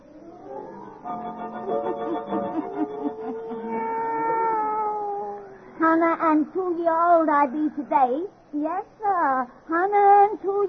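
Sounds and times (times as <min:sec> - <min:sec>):
laughter: 0:01.9 - 0:04.0
black cat yowling: 0:02.6 - 0:05.6
speech: 0:06.4 - 0:10.6.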